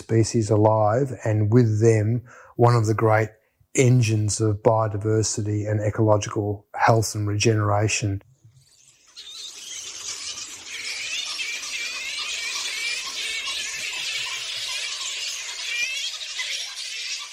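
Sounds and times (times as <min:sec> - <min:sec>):
speech: 0:00.0 - 0:08.3
flying foxes chattering and shrieking in the trees at night: 0:08.5 - 0:17.3.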